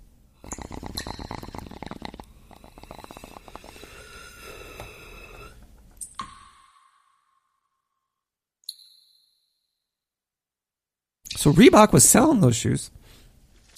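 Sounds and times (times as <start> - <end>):
water gurgling and bubbling through a glass bong: 0.4 - 5.6
speech: 11.4 - 13.0.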